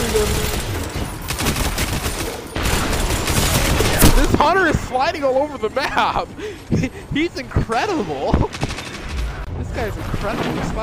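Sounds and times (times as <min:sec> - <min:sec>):
video game gunfire: 0:00.0 - 0:04.6, 0:08.0 - 0:10.6
speech: 0:04.4 - 0:08.7, 0:09.8 - 0:10.8.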